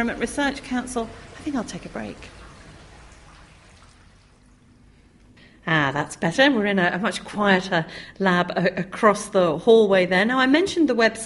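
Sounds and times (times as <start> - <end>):
speech: 0.0 - 2.4, 5.7 - 11.2
running water in a lab: 0.0 - 7.8.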